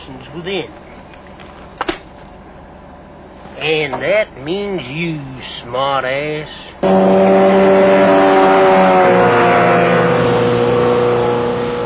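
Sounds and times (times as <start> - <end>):
speech: 0.1 - 0.8, 3.6 - 8.0
motorboat engine roaring during a boat chase: 6.8 - 11.8.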